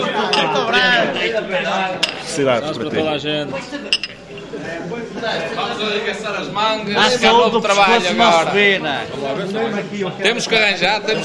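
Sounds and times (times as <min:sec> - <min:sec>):
murmur of several people talking: 0:00.0 - 0:11.2
glasses clinking together in a toast: 0:00.1 - 0:02.4, 0:03.7 - 0:04.7
speech: 0:01.4 - 0:11.2.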